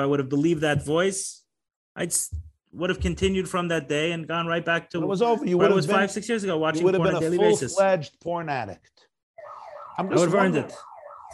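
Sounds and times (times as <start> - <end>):
speech: 0.0 - 1.4, 2.0 - 9.1, 10.0 - 10.9
electronic alarm with steady and warbling tone: 9.4 - 11.3.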